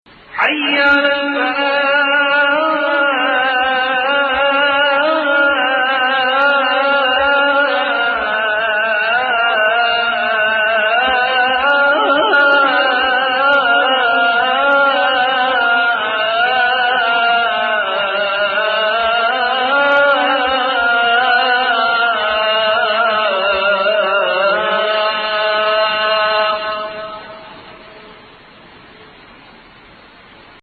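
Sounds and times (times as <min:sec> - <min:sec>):
Adhan call to prayer in maqam Hijaz and Bayati: 0:00.2 - 0:29.2.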